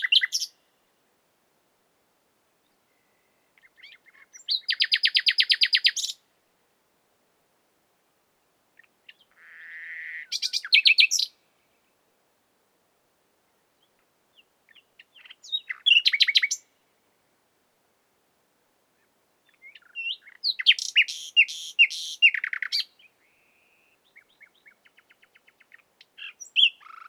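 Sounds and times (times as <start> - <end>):
common nightingale Luscinia megarhynchos singing: 0.0 - 0.8, 2.6 - 6.3, 8.8 - 12.0, 13.8 - 16.9, 19.0 - 27.0.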